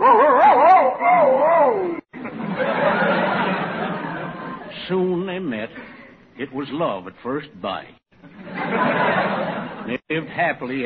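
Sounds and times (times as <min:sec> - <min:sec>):
person imitating a male dog's wavering howl: 0:00.0 - 0:02.0
laughter: 0:02.1 - 0:04.8, 0:08.2 - 0:10.4
speech: 0:06.4 - 0:10.8.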